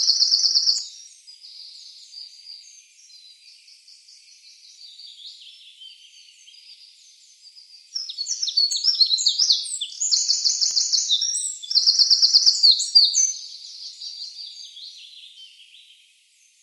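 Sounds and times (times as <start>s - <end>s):
Eurasian wren song: 0.0s - 16.6s.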